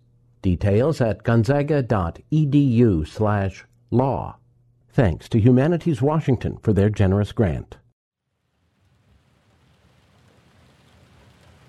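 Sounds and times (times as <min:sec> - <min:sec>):
speech: 0:00.4 - 0:04.4, 0:05.0 - 0:07.8
steady dense rainfall: 0:08.4 - 0:11.6
deep rolling thunder rumble: 0:08.8 - 0:11.6.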